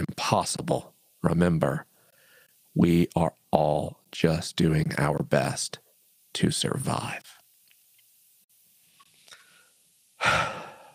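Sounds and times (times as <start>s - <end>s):
speech: 0.3s - 1.9s, 2.8s - 7.3s, 10.2s - 10.6s
deep breath: 2.0s - 2.6s, 9.3s - 10.9s.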